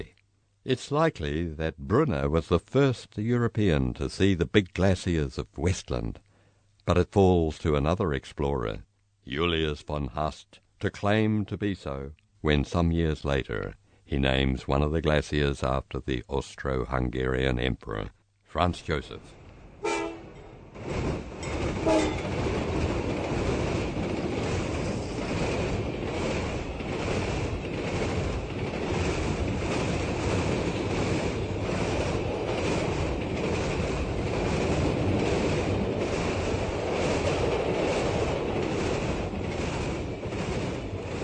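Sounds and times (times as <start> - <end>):
speech: 0.7 - 6.2, 6.9 - 19.4
train thundering through a station: 19.7 - 41.2
brief horn-like tone: 19.8 - 20.4, 21.8 - 22.2.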